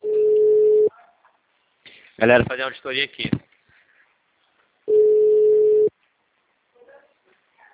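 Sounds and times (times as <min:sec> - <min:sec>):
telephone ringback tone while a call connects: 0:00.0 - 0:00.9, 0:04.9 - 0:05.9
speech: 0:02.2 - 0:03.5.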